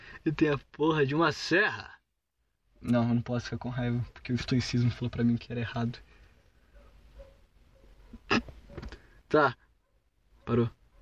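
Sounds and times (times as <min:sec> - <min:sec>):
speech: 0:00.2 - 0:02.0, 0:02.8 - 0:06.1, 0:09.3 - 0:09.6, 0:10.5 - 0:10.8
dog barking: 0:06.7 - 0:09.0, 0:09.8 - 0:10.9.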